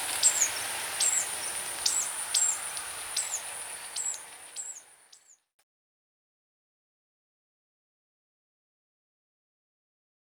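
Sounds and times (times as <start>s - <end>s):
high insect hum: 0.0s - 5.4s
ruby-cheeked sunbird call notes: 0.0s - 5.4s.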